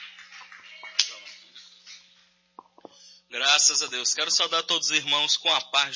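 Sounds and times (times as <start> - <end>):
church audience clapping to welcome a speaker: 0.0 - 2.8
speech: 3.3 - 5.9.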